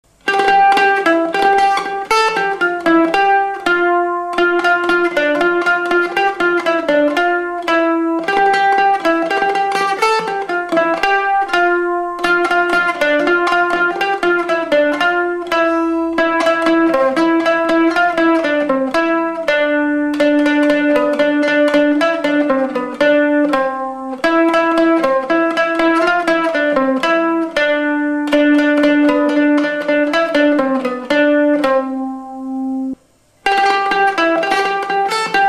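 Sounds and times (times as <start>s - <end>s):
mandolin: 0.0s - 35.4s.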